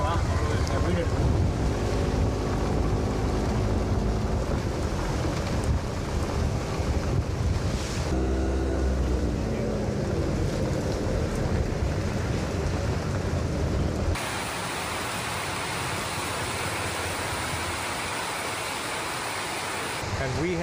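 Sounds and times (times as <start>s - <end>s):
heavy rain on a metal roof: 0.0s - 20.6s
motor engine rumbling: 0.0s - 20.6s.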